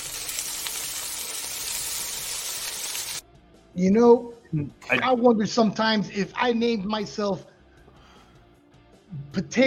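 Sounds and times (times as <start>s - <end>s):
food frying in a hot pan: 0.0s - 3.2s
speech: 3.8s - 7.5s, 9.3s - 9.6s.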